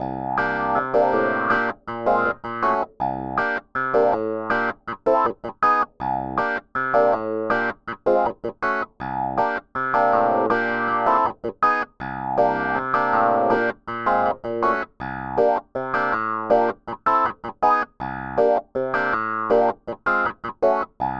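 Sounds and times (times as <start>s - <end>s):
funk piano with bass triads and chromatic variations: 0.0s - 21.1s.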